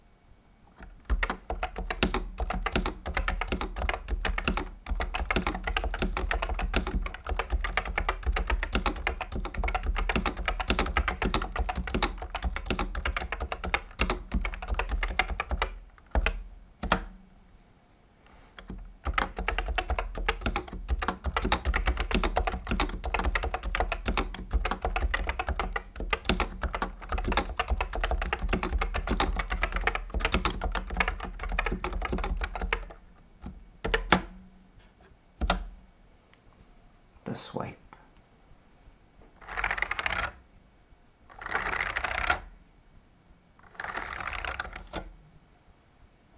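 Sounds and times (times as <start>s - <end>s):
Realforce PMK Borealis keyboard with DSA keycaps typing: 0.8s - 17.0s, 18.6s - 34.2s, 39.4s - 40.4s, 41.3s - 42.5s, 43.7s - 45.1s.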